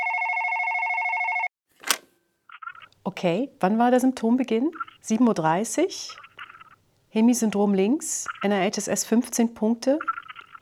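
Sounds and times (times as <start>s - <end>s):
telephone ringing on a call to a hospital stroke doctor: 0.0s - 2.9s
speech: 3.0s - 6.2s, 7.1s - 10.6s.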